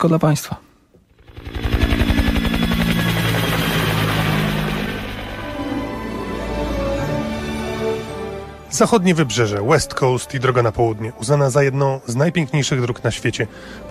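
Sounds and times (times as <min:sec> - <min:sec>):
speech: 0:00.0 - 0:00.7, 0:08.8 - 0:13.9
sightseeing helicopter rotor thumping over glaciers on New Zealand's west coast: 0:01.1 - 0:05.7
sightseeing helicopter engine whine: 0:01.1 - 0:08.1.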